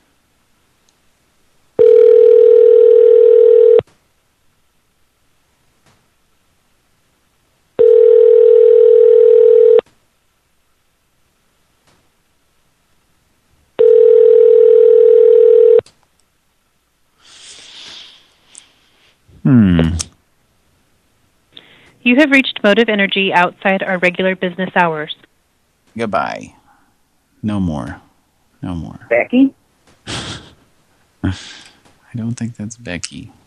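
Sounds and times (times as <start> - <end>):
telephone ringing tone on a call: 1.8 - 3.8, 7.8 - 9.8, 13.8 - 15.8
speech: 22.1 - 25.2, 26.0 - 26.6, 27.4 - 29.6, 31.2 - 33.4.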